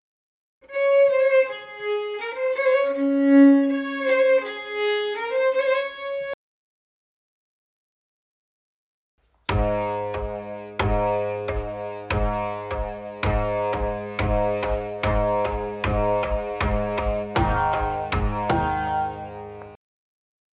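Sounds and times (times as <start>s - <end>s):
instrumental medley intro: 0.7s - 6.4s, 9.5s - 19.8s.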